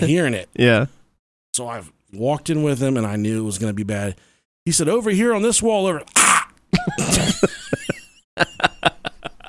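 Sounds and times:
speech: 0.0s - 1.0s, 1.6s - 7.6s, 8.4s - 8.7s
person vocally imitating a man's burp-cough: 6.1s - 7.4s
laughter: 6.8s - 9.4s.

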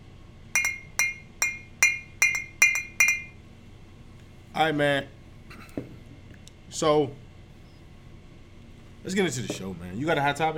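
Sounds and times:
glasses clinking in a toast: 0.6s - 3.4s
speech: 4.6s - 5.2s, 6.7s - 7.2s, 9.0s - 10.5s.

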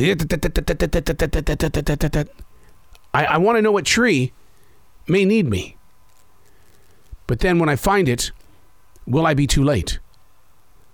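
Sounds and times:
voice imitating woodpecker drumming in a forest in South Charlotte, North Carolina: 0.0s - 2.4s
speech: 0.0s - 2.5s, 3.1s - 4.4s, 5.1s - 5.8s, 7.3s - 8.4s, 9.1s - 10.0s.

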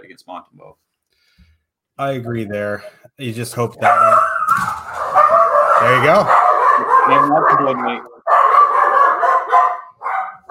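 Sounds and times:
speech: 0.2s - 0.9s, 2.0s - 4.7s, 5.8s - 8.1s
dogs barking and yowling loudly: 3.7s - 10.4s.

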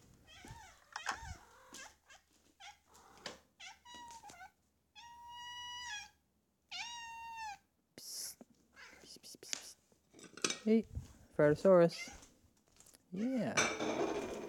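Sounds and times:
hungry cat meowing: 0.2s - 7.6s, 12.0s - 12.3s
speech: 10.6s - 12.2s, 13.2s - 14.0s.

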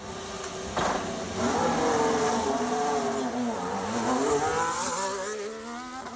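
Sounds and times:
Formula 1 Ferrari car engine screaming at high revs through gear changes: 1.4s - 6.1s.

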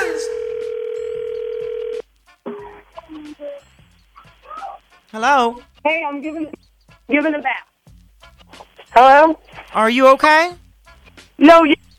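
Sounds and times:
telephone ring tone on a call line: 0.0s - 2.0s
speech: 5.2s - 7.7s, 9.0s - 10.6s, 11.4s - 11.8s.

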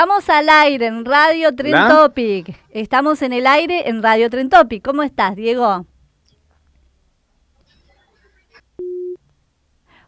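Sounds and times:
speech: 0.0s - 5.9s
telephone busy tone after a dropped call: 8.8s - 9.2s.

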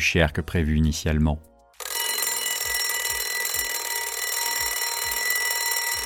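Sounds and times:
speech: 0.0s - 1.5s
alarm clock ringing: 1.8s - 6.0s.

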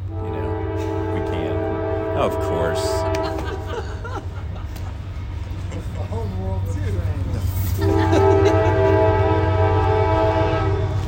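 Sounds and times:
train horn blasting a sustained chord: 0.0s - 3.8s, 7.8s - 11.0s
train rumbling: 0.0s - 11.0s
speech: 2.2s - 3.2s
laughter: 2.8s - 9.3s.

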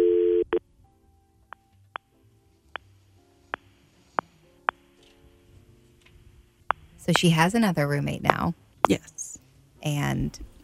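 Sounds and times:
ringback tone of an outgoing telephone call: 0.0s - 0.6s
speech: 7.1s - 10.5s.

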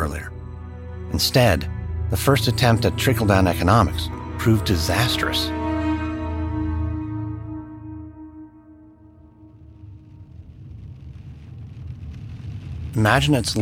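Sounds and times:
sustained musical chord: 0.0s - 10.2s
speech: 1.2s - 5.6s, 13.0s - 13.6s
rain patter heard from inside a car: 9.6s - 13.6s.

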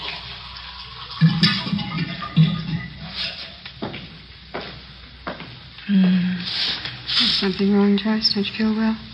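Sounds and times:
water pouring into a glass: 0.1s - 2.9s
speech: 7.4s - 9.1s.

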